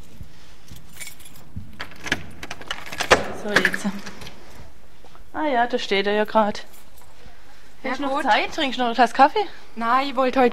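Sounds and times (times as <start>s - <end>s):
keys jangling and clinking: 0.6s - 4.7s
speech: 3.4s - 4.2s, 5.4s - 6.7s, 7.8s - 10.5s.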